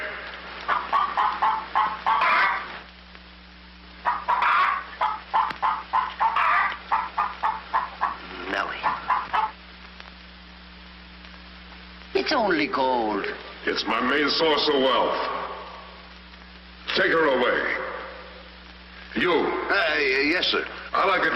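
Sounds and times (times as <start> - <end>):
hen clucking: 0.0 - 2.8, 4.0 - 9.6
steady low hum: 0.0 - 21.3
speech: 12.3 - 15.4, 19.2 - 21.3.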